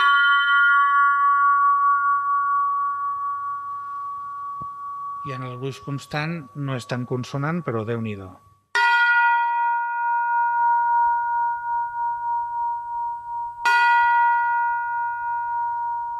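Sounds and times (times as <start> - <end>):
model church bell of variable wall thickness struck and ringing: 0.0 - 16.1
speech: 5.2 - 8.5.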